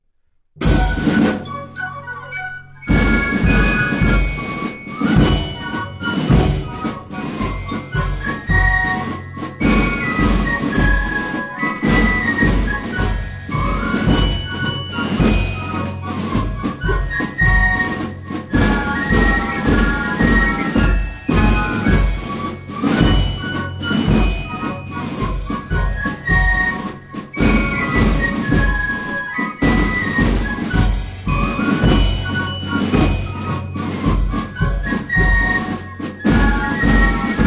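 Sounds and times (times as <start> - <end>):
march music: 0.6 - 37.4.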